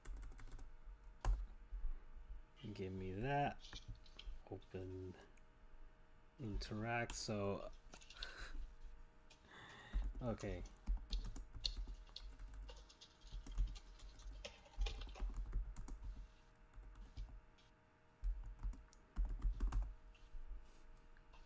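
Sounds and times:
keyboard typing: 0:00.0 - 0:01.4, 0:09.9 - 0:17.4, 0:18.2 - 0:19.9
low hum: 0:00.0 - 0:21.4
speech: 0:02.6 - 0:03.9, 0:04.5 - 0:05.3, 0:06.4 - 0:08.0, 0:10.2 - 0:10.8.

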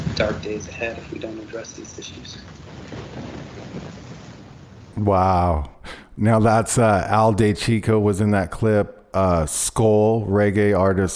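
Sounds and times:
low rolling thunder rumble: 0:00.0 - 0:07.1
dense rain hiss: 0:00.0 - 0:07.7
speech: 0:00.2 - 0:03.0, 0:05.0 - 0:11.1.

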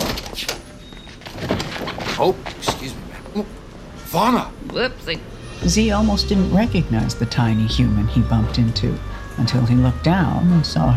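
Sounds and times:
door opening with rattling scrape: 0:00.0 - 0:03.0
low noise: 0:00.0 - 0:10.9
speech: 0:02.2 - 0:10.9.

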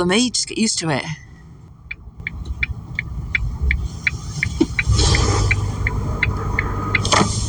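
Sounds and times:
speech: 0:00.0 - 0:01.3
pickup truck engine rumbling and pulling away: 0:01.3 - 0:07.4
regular clicking tick: 0:01.9 - 0:07.4.

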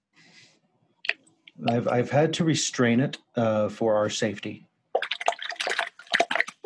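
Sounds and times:
water dripping: 0:01.0 - 0:02.0, 0:04.9 - 0:06.6
speech: 0:01.6 - 0:04.7
walking shark splashing in shallow water: 0:04.9 - 0:06.6.

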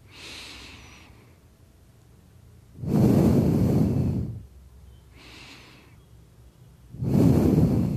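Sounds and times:
slow deep breathing from a calming breathing exercise: 0:00.0 - 0:01.6, 0:02.7 - 0:04.5, 0:05.1 - 0:06.0, 0:06.9 - 0:07.9.

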